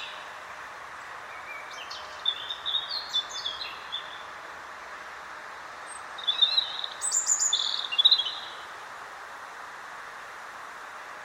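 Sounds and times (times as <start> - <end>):
European robin Erithacus rubecula song: 0.0 - 4.3, 5.8 - 8.7
soft background hiss: 0.0 - 11.2.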